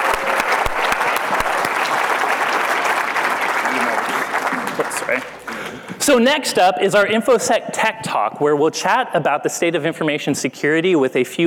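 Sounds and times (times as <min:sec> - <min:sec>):
sharp loud claps: 0:00.0 - 0:05.7
audience applause after an on-stage game: 0:00.0 - 0:05.8
speech: 0:05.1 - 0:05.4, 0:06.0 - 0:11.4.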